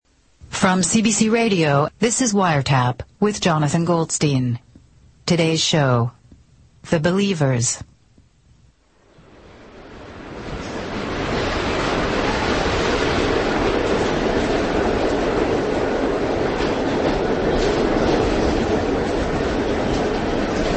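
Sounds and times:
subway train running along the tracks: 0.1s - 4.6s, 8.8s - 20.7s
speech: 0.6s - 4.7s, 5.3s - 6.2s, 6.8s - 7.9s.

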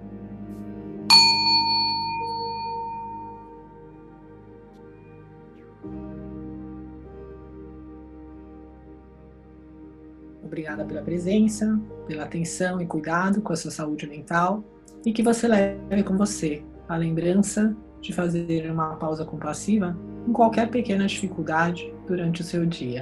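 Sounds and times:
soft sustained ambient music drone: 0.0s - 22.9s
meditation bell struck and ringing: 1.1s - 4.4s
speech: 10.5s - 22.9s.

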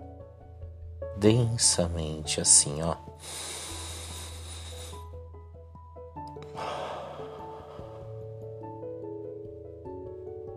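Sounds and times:
steady soft music tones: 0.0s - 10.5s
speech: 1.2s - 3.5s
deep breath drawn in to fill the lungs: 3.2s - 5.1s, 6.5s - 8.2s.

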